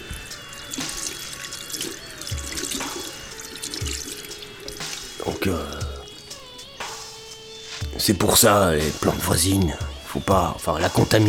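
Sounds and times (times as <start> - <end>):
water pouring with a steady splashing hiss: 0.0 - 6.4
speech: 5.4 - 5.8, 8.0 - 11.2.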